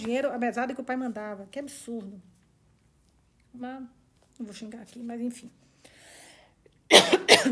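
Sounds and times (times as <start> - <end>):
speech: 0.0 - 2.4, 3.6 - 5.6, 6.9 - 7.5
person coughing: 6.9 - 7.5.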